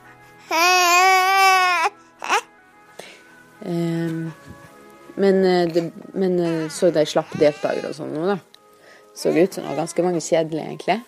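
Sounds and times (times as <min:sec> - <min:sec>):
baby wailing, squealing and crying: 0:00.4 - 0:02.5, 0:06.4 - 0:08.1
speech: 0:00.5 - 0:00.7, 0:03.7 - 0:03.9, 0:05.2 - 0:08.5, 0:09.2 - 0:11.0.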